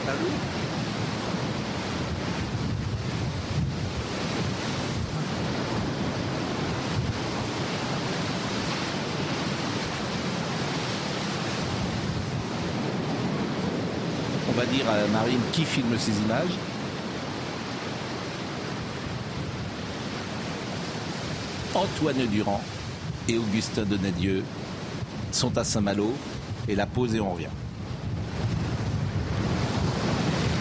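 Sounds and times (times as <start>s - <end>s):
sea waves washing onto the shore: 0.0s - 30.5s
wind buffeting: 0.0s - 30.5s
speech: 14.7s - 16.7s, 21.8s - 24.7s, 25.3s - 27.6s.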